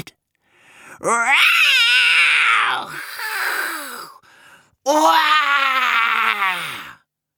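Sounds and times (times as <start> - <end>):
speech: 1.0 - 1.7, 4.8 - 5.8
voices imitating a tiger's roar in anger: 1.0 - 4.1, 4.9 - 7.0.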